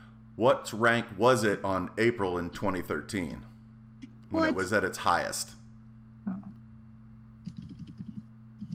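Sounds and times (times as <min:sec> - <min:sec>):
low steady hum: 0:00.0 - 0:08.7
speech: 0:00.4 - 0:03.5, 0:04.3 - 0:05.6
fast typing on a computer keyboard: 0:07.4 - 0:08.7.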